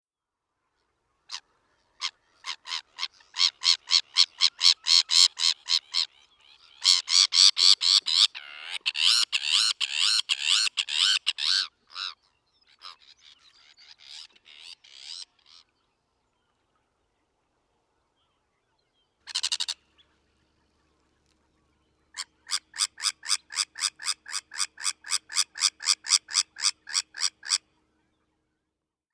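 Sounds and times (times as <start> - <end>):
Sabine's Gull: 1.1 - 15.8, 19.2 - 19.9, 22.1 - 27.8.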